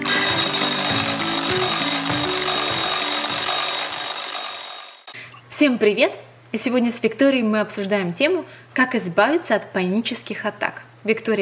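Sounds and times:
low stepping melody: 0:00.0 - 0:04.3
alarm clock ringing: 0:00.0 - 0:05.2
speech: 0:05.6 - 0:11.4.

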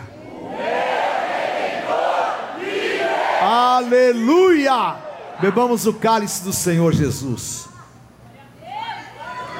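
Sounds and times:
large crowd shouting a victory cry together: 0:00.2 - 0:03.7
speech: 0:03.5 - 0:07.7.

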